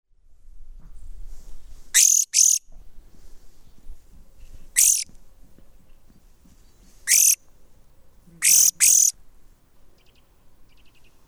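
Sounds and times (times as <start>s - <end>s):
European greenfinch Chloris chloris harsh hissing calls: 2.0s - 2.6s, 4.8s - 5.0s, 7.0s - 7.4s, 8.4s - 9.1s.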